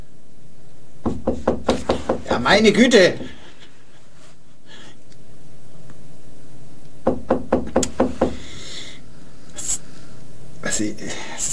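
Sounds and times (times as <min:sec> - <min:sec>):
quiet room hum: 0:00.0 - 0:11.5
knocking on a locked door: 0:01.0 - 0:02.4, 0:07.0 - 0:08.4
speech: 0:01.1 - 0:01.5, 0:02.4 - 0:03.4, 0:10.8 - 0:11.5.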